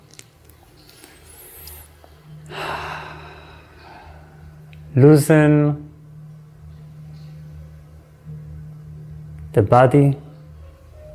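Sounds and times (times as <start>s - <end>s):
steady low hum: 0.0s - 11.1s
deep slow breath drawn in: 1.0s - 4.8s
speech: 5.0s - 5.8s, 9.6s - 10.2s.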